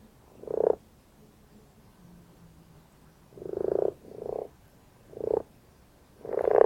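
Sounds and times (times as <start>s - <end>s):
common frog giving soft low purring croaks: 0.3s - 0.8s, 3.3s - 5.5s, 6.2s - 6.6s.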